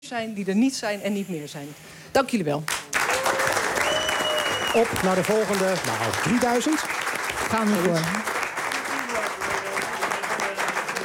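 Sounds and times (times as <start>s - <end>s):
speech: 0.1s - 2.8s, 4.7s - 8.4s
studio audience applause: 2.7s - 11.0s.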